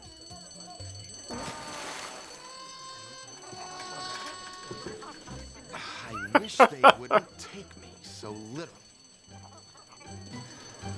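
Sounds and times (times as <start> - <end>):
alarm bell ringing with a bright metallic shrill: 0.0 - 10.9
commotion: 0.0 - 10.9
indistinct voices: 0.0 - 10.9
laughter: 0.4 - 10.9
speech: 6.4 - 8.8.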